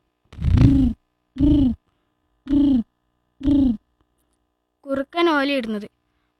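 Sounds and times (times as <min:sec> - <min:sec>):
pigeon cooing: 0:00.4 - 0:01.8, 0:02.5 - 0:03.8
speech: 0:04.9 - 0:05.9.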